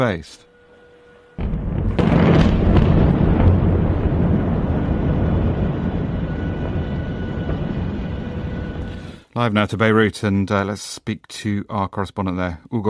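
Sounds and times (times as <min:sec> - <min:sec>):
speech: 0:00.0 - 0:00.5, 0:09.4 - 0:12.8
deep rolling roar of explosions: 0:01.4 - 0:08.9
explosion blast from an airstrike: 0:01.4 - 0:09.2.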